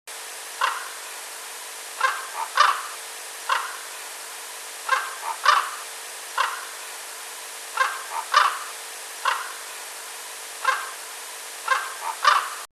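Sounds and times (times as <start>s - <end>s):
Corvus corax raven: 0.6s - 1.0s, 2.0s - 3.9s, 4.9s - 6.8s, 7.8s - 9.6s, 10.6s - 11.0s, 11.6s - 12.7s.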